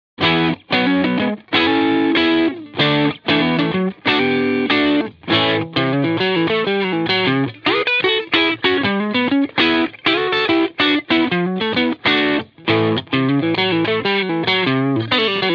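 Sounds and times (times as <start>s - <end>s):
overdriven sound: 0.2s - 15.5s.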